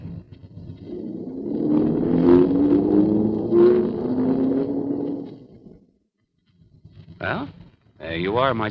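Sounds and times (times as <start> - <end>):
car engine humming as car is driven slowly into a garage: 0.0 - 6.0
speech: 8.3 - 8.6.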